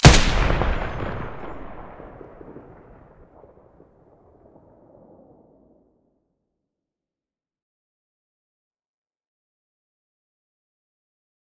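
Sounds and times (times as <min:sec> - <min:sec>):
M249 machine gun muzzle firing: 0:00.0 - 0:02.4.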